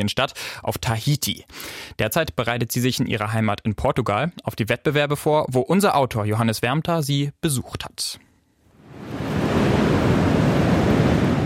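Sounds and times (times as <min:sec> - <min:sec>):
speech: 0:00.0 - 0:08.3
strong Atlantic wind roaring at a beach: 0:08.8 - 0:11.4
surf crashing at a beach: 0:08.8 - 0:11.4.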